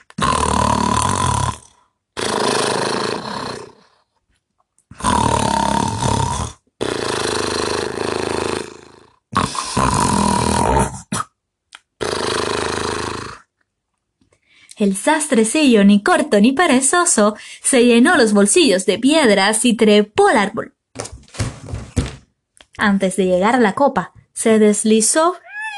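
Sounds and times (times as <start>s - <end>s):
voice imitating two giants snoring at the foot of a tree in a forest: 0.1s - 4.0s, 4.9s - 11.1s, 12.0s - 13.5s
speech: 14.8s - 20.8s, 22.8s - 25.4s.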